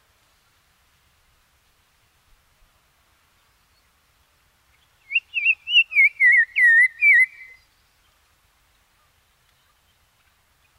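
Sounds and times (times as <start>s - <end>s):
black-crowned tchagra song: 5.1s - 7.6s.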